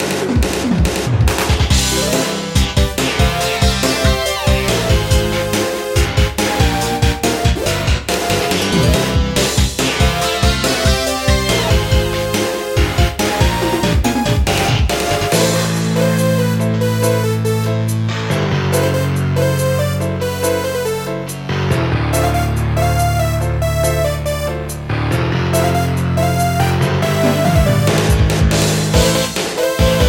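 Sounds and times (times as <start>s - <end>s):
theme music: 0.0s - 30.0s.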